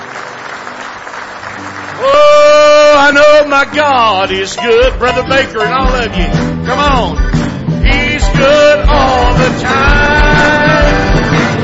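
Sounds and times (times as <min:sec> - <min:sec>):
church congregation applauding with hand claps: 0:00.0 - 0:04.5, 0:09.7 - 0:11.6
speech: 0:02.0 - 0:02.3, 0:03.5 - 0:07.2, 0:07.8 - 0:10.6.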